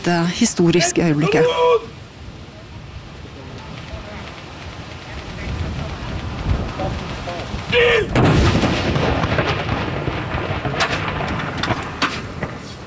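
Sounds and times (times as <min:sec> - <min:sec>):
speech: 0:00.0 - 0:02.0
outdoor noise: 0:00.0 - 0:12.8
single artillery cannon salute shot: 0:08.1 - 0:12.8.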